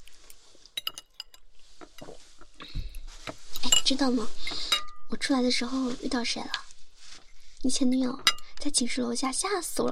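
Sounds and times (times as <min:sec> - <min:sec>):
glasses clinking together in a toast: 0:00.8 - 0:01.5, 0:08.3 - 0:08.5
tabletop clatter: 0:00.8 - 0:04.9
speech: 0:03.9 - 0:06.6, 0:07.6 - 0:09.9.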